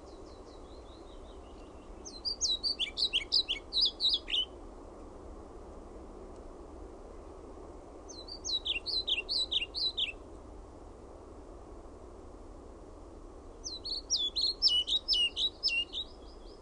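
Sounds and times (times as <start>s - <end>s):
European pied flycatcher song: 0.0s - 4.6s, 8.1s - 10.2s, 13.6s - 16.6s.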